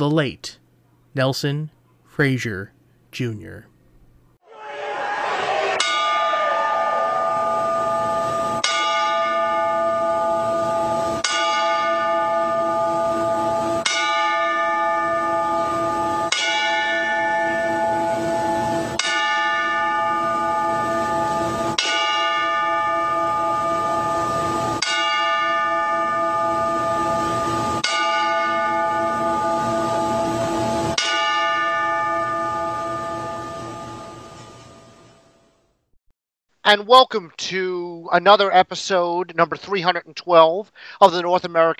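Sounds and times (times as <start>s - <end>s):
speech: 0.0s - 0.6s, 1.2s - 3.7s, 36.8s - 41.7s
bell tolling in a salute: 4.5s - 35.3s.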